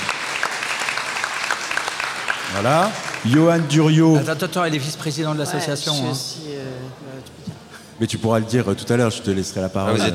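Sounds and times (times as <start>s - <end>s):
audience applauding at a panel debate event: 0.0s - 3.9s
speech: 2.5s - 10.1s.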